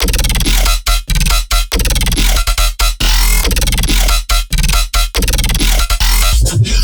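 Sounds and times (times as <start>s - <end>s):
trap and dubstep bass loop: 0.0s - 6.8s.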